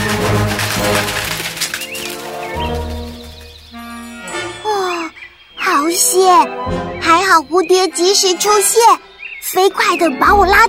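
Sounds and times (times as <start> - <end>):
sparrow wings fluttering: 0.0 - 4.1
steady music: 0.0 - 10.6
sparrow chirps: 1.8 - 10.6
speech: 6.2 - 10.6.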